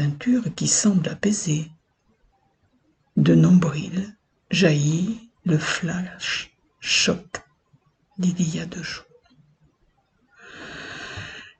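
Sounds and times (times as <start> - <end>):
speech: 0.0 - 1.8, 3.2 - 7.4, 8.2 - 9.1
single drawn-out airy wheezy breath: 10.4 - 11.5.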